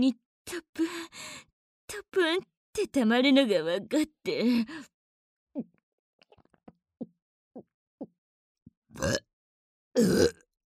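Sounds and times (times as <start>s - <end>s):
speech: 0.0s - 4.9s, 9.0s - 9.3s, 10.0s - 10.4s
person burping: 9.0s - 9.3s, 10.0s - 10.5s.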